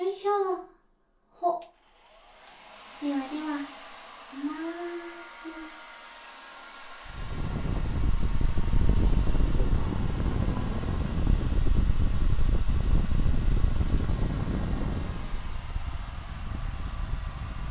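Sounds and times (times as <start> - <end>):
hair dryer blowing air: 1.6 - 17.7.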